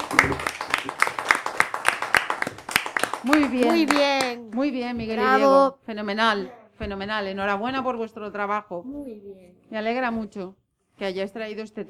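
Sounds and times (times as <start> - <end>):
small group applauding two presenters after their talk: 0.0 - 5.4
speech: 3.2 - 11.8.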